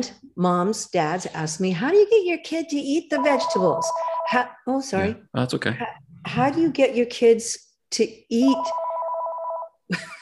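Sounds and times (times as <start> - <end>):
speech: 0.0 - 8.8, 9.9 - 10.1
phone ringing with an electronic trill: 3.2 - 4.5, 8.4 - 9.8.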